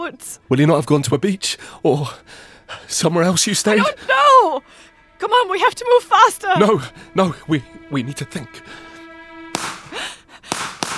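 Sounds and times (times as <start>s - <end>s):
speech: 0.1s - 8.8s
gunshots: 9.6s - 10.9s.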